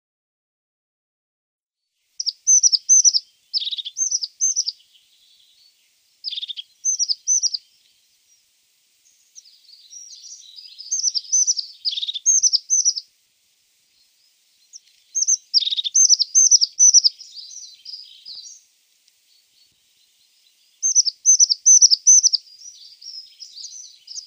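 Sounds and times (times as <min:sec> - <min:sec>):
Crested tit giving rapid high chattering phrases of short slurred notes: 0:02.2 - 0:08.0, 0:09.0 - 0:13.1, 0:14.0 - 0:18.6, 0:19.3 - 0:24.2.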